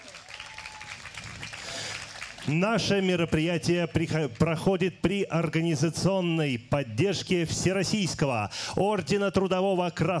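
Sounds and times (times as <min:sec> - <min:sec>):
audience applause after a pop-jazz orchestra performance: 0:00.0 - 0:02.6
speech: 0:02.4 - 0:10.1.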